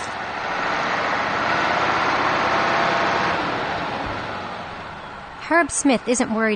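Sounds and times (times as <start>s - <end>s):
diesel tractor engine idling on a farm in Ida Township Michigan: 0.0s - 6.5s
speech: 5.5s - 6.5s.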